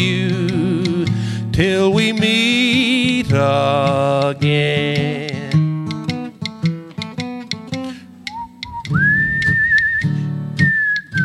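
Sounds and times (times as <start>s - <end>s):
strummed guitar accompaniment: 0.0s - 11.2s
speech: 1.6s - 5.3s
person whistling a melody: 8.2s - 11.2s.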